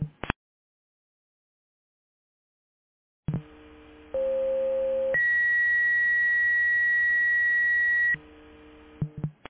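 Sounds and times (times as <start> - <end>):
dispatch pre-alert tones over a radio channel for a fire alarm call: 4.2 - 8.2.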